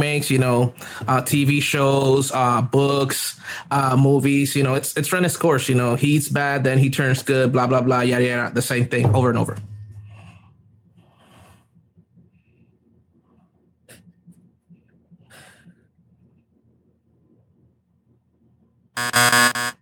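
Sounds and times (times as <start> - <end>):
speech: 0.2 - 9.7, 19.0 - 19.7
faint breathy sounds: 10.0 - 16.4
loud harsh electronic buzzer: 19.0 - 19.7.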